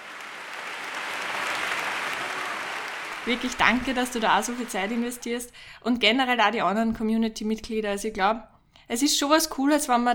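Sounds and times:
crowd applauding: 0.0 - 5.5
speech: 3.3 - 10.1.

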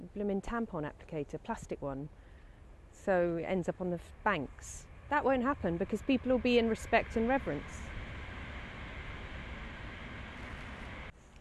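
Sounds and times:
speech: 0.1 - 2.3, 3.0 - 8.0
train passing by: 2.6 - 11.1.

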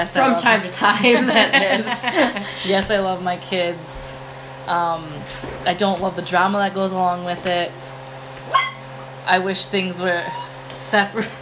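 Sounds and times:
speech: 0.0 - 4.0, 4.7 - 8.7, 9.3 - 11.4
laughter: 0.9 - 2.7
dog yelping and whining: 8.5 - 9.3, 10.1 - 10.8.

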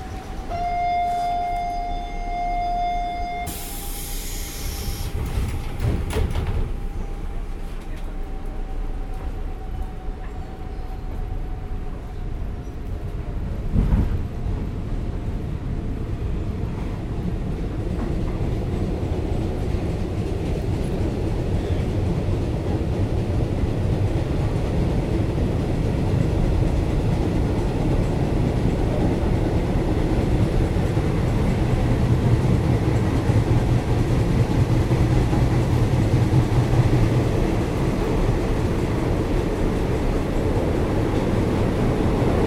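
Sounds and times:
steady low rumble inside a moving train: 0.0 - 42.4
train clunks: 4.8 - 10.4.

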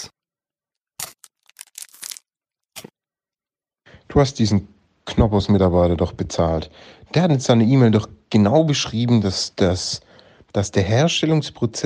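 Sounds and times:
crunchy bite into a crisp wafer snack: 1.0 - 2.9
speech: 4.1 - 11.8.

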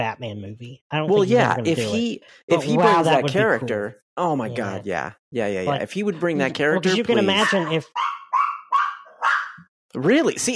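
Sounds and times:
speech: 0.0 - 8.2, 9.9 - 10.5
dog barking: 7.2 - 9.7.

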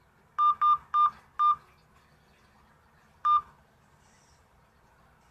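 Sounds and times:
telephone keypad tones entering a voicemail password: 0.4 - 1.6, 3.2 - 3.5.

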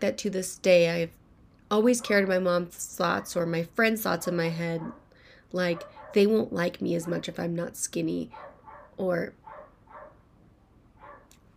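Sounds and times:
speech: 0.0 - 9.4
low steady hiss: 0.0 - 11.5
neighbour's dog barking frantically outside: 4.2 - 5.1, 5.7 - 6.3, 8.3 - 10.2, 11.0 - 11.3.

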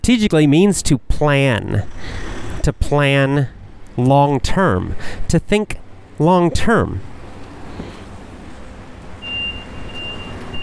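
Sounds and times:
speech: 0.0 - 7.1
heavy vehicle engine rumbling: 1.2 - 10.6
thin high-pitched tone: 6.3 - 7.0.

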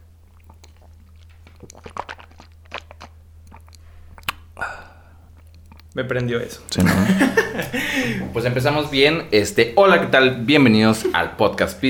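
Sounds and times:
person sipping water against the microphone: 0.0 - 6.8
gulping swallows: 0.0 - 7.0
speech: 6.0 - 11.8
laughter: 6.8 - 8.4, 10.8 - 11.4.

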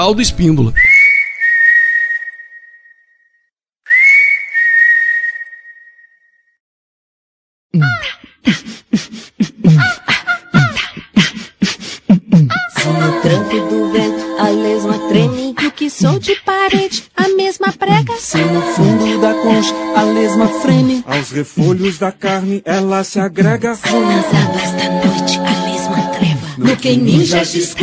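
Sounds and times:
speech: 0.0 - 0.9, 15.9 - 27.8
long high whistle-like tones: 0.8 - 6.6
whole family singing a lively Brazilian song: 9.6 - 27.8.

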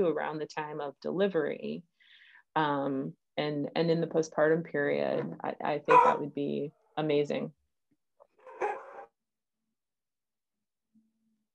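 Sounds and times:
speech: 0.0 - 7.6
dog barking loudly and roughly: 5.9 - 6.2, 8.5 - 9.1.

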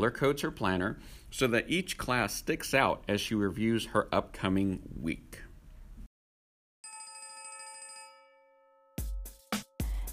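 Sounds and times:
speech: 0.0 - 5.4
school dismissal bell ringing: 6.8 - 9.0.

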